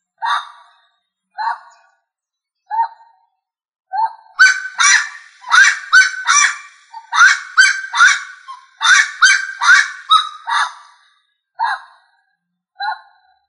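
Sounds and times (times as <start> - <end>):
rail calls: 4.4 - 10.8.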